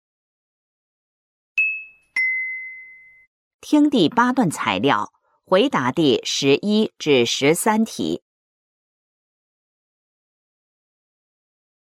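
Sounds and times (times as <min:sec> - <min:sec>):
two-tone doorbell chime: 0:01.6 - 0:03.3
people talking: 0:03.6 - 0:08.2.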